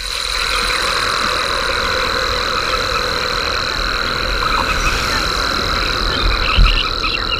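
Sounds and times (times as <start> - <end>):
dense chorus: 0.0 - 7.3
rare silver bell cricket stridulating in arid salt lands: 0.0 - 7.3.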